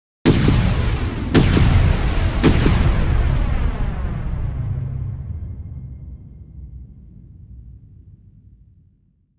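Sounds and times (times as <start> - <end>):
percussive hits: 0.3 - 5.3.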